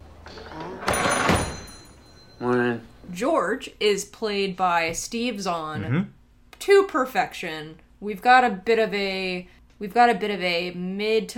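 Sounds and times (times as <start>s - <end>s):
door opening with bright rush and rattle: 0.2s - 2.1s
speech: 2.4s - 11.3s.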